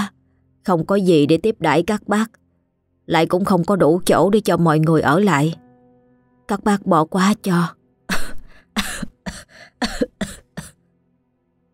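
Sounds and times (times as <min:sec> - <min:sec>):
speech: 0:00.7 - 0:02.4, 0:03.1 - 0:05.6, 0:06.5 - 0:07.8
woman coughing violently while clutching her chest: 0:08.1 - 0:10.8.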